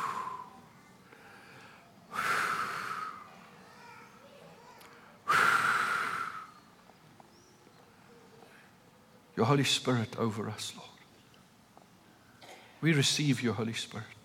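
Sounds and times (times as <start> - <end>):
faint softer breaths: 0.0 - 9.3
person breathing out over listeners in a prayer setting: 1.2 - 3.2, 5.3 - 6.5
speech: 9.4 - 10.9, 12.8 - 14.2.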